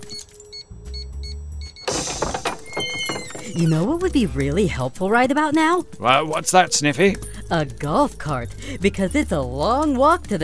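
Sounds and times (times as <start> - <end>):
secret dog door flap in a fence thunking shut: 1.9 - 3.8
clattering rustling noise: 1.9 - 4.0
speech: 3.6 - 10.4.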